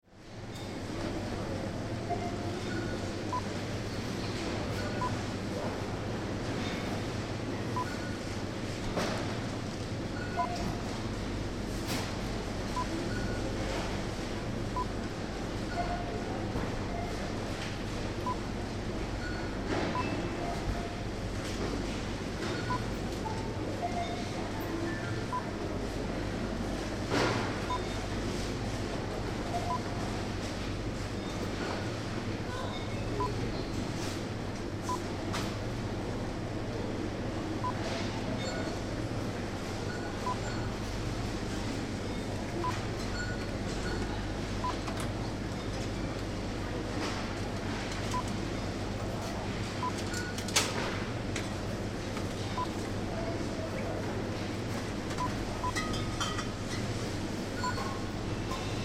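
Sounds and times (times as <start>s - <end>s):
supermarket ambience in the drinks aisle: 0.2s - 58.8s.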